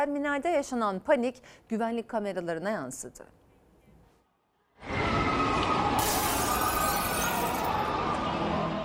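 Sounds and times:
speech: 0:00.0 - 0:03.4
loud steady roar of storm wind: 0:04.8 - 0:06.7
glass facade shattering during a storm: 0:06.0 - 0:07.8.

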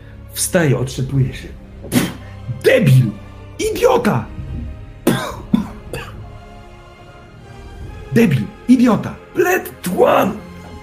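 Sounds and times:
speech: 0:00.4 - 0:04.4, 0:08.2 - 0:10.4
person coughing harshly: 0:01.9 - 0:03.2, 0:05.0 - 0:06.2.

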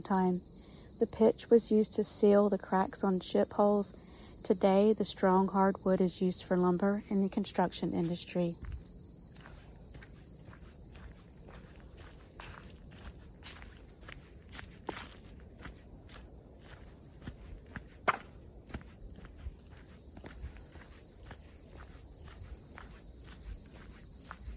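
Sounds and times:
speech: 0:00.0 - 0:08.7
footsteps climbing a sand dune over sand and log steps: 0:08.0 - 0:24.5.

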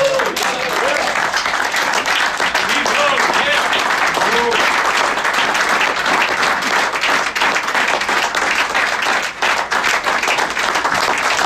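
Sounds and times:
cheers and whoops from audience: 0:00.0 - 0:01.2
large audience giving a standing ovation applause: 0:00.0 - 0:11.4.

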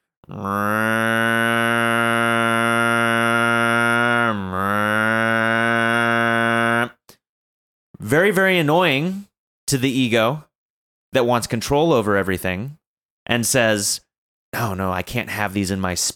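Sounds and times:
voice imitating distant lawnmowers droning: 0:00.2 - 0:07.0
speech: 0:00.3 - 0:00.8, 0:08.1 - 0:10.5, 0:11.1 - 0:16.1.

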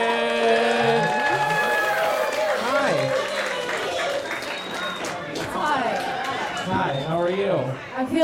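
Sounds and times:
whoops and cheering voices: 0:00.0 - 0:04.8
crowd applauding: 0:00.0 - 0:07.7.

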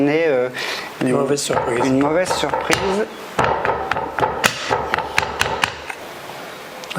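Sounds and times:
speech: 0:00.0 - 0:03.3
tapping a mold to release air bubbles: 0:01.5 - 0:05.9.

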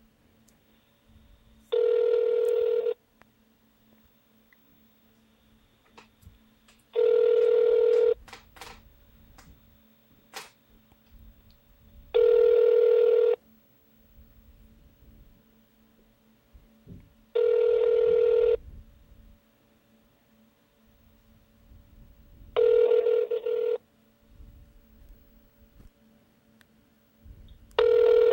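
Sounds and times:
telephone ringback tone on an outgoing call: 0:01.7 - 0:03.0, 0:07.0 - 0:08.2, 0:12.2 - 0:13.4, 0:17.4 - 0:18.6, 0:22.6 - 0:23.8, 0:27.8 - 0:28.3.

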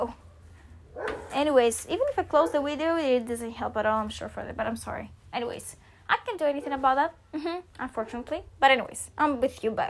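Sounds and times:
dog barking: 0:00.9 - 0:01.4
speech: 0:01.4 - 0:09.8.

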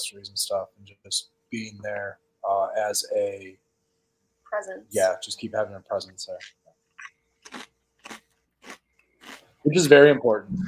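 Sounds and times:
speech: 0:00.0 - 0:03.6, 0:04.5 - 0:06.6, 0:09.6 - 0:10.6
crunchy chips being bitten and chewed: 0:07.0 - 0:09.5.

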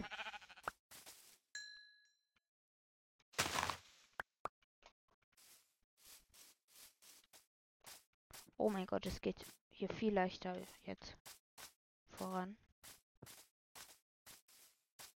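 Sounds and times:
sheep bleating: 0:00.0 - 0:00.7
speech: 0:08.6 - 0:11.2, 0:12.2 - 0:12.6.

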